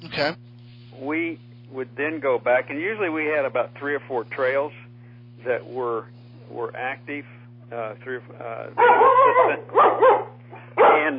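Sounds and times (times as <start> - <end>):
low electrical hum: 0.0 - 11.1
speech: 0.2 - 4.8, 5.4 - 11.1
dog barking: 8.8 - 11.1.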